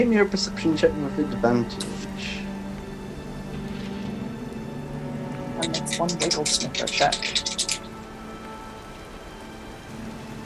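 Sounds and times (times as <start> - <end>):
speech: 0.0 - 2.4, 5.8 - 7.8
rain pattering on a surface: 0.0 - 10.4.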